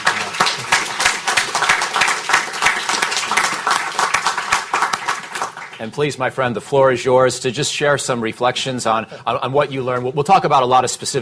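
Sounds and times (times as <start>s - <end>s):
audience applause: 0.0s - 6.0s
speech: 5.8s - 11.1s.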